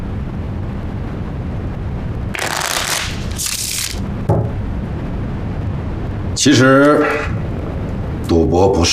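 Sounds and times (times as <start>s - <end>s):
low steady rumble: 0.0s - 8.9s
deck of playing cards being riffle-shuffled: 2.4s - 4.0s
speech: 6.4s - 7.4s, 8.3s - 8.9s.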